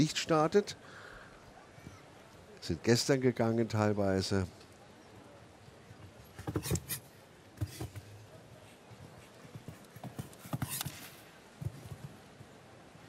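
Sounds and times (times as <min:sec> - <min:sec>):
speech: 0:00.0 - 0:01.0, 0:02.6 - 0:04.6, 0:06.5 - 0:07.0
steady hiss: 0:00.0 - 0:13.0
show jumping horse hooves clip-clopping: 0:07.6 - 0:12.5.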